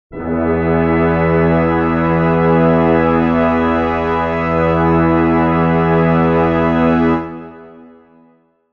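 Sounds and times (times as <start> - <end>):
brass chord in E major: 0.1 - 8.7.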